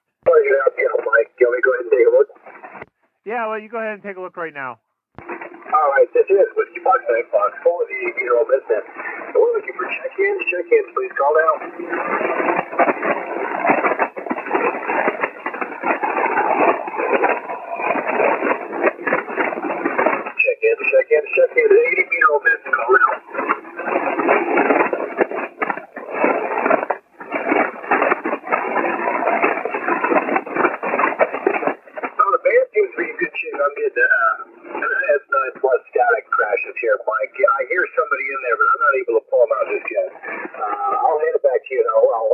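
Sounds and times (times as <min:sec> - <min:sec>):
voice speaking through noisy shortwave amateur radio signal: 0:00.3 - 0:02.3, 0:03.3 - 0:04.8, 0:05.8 - 0:12.6, 0:20.4 - 0:24.8, 0:32.2 - 0:42.3
loud crackling static crashes and hiss on shortwave radio band: 0:00.3 - 0:42.3
speech: 0:03.3 - 0:04.9, 0:05.7 - 0:13.8, 0:14.6 - 0:16.0.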